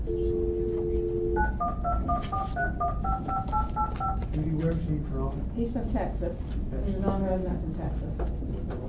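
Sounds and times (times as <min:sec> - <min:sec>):
telephone dial tone: 0:00.1 - 0:04.2
speech: 0:01.9 - 0:08.8.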